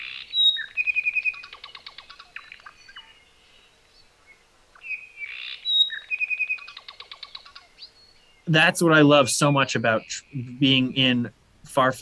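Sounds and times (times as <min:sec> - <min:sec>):
quieter scattered honeycreeper chirps: 0:00.0 - 0:11.2
Hawaiian honeycreepers iiwi and apapane singing: 0:00.0 - 0:11.9
speech: 0:08.5 - 0:11.9.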